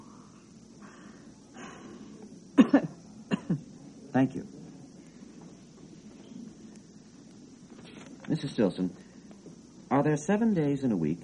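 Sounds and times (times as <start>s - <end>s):
person coughing: 2.6s - 3.6s
speech: 4.2s - 4.6s, 8.6s - 9.1s, 10.0s - 11.2s.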